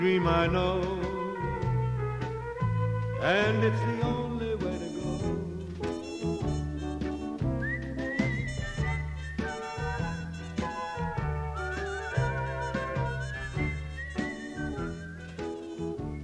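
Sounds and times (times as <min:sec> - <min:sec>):
speech: 0:00.0 - 0:01.1, 0:03.2 - 0:04.7
full band accompaniment with rhythmic bass and brass chords: 0:00.0 - 0:16.2
man whistling a lilting melody: 0:00.0 - 0:16.2.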